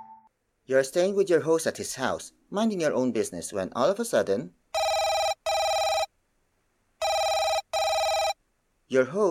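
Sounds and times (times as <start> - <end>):
speech: 0.7 - 4.6, 8.9 - 9.2
telephone ringing: 4.8 - 6.1, 7.0 - 8.4.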